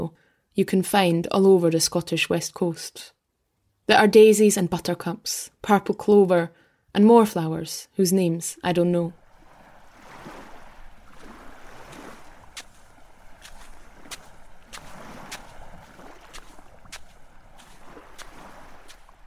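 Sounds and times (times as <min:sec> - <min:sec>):
speech: 0:00.0 - 0:03.2, 0:03.9 - 0:09.2
waves rolling against a rocky shore on the Scottish west coast: 0:09.2 - 0:19.2.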